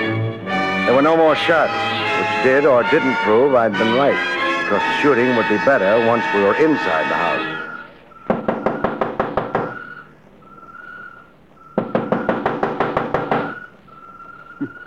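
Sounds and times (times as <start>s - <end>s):
speech: 0.9s - 7.6s
steady high whistling tone: 0.9s - 12.5s, 13.3s - 14.8s
knocking on a door: 8.3s - 9.8s, 11.8s - 13.6s.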